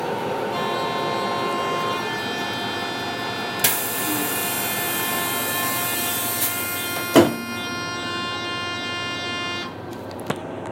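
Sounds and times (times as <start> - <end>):
departure signal at Svebølle station: 0.2 - 9.9.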